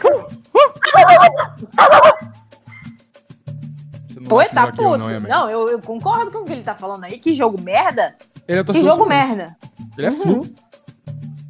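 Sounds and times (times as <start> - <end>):
dog barking with sharp high yips: 0.0 - 2.9
speech: 4.3 - 10.6.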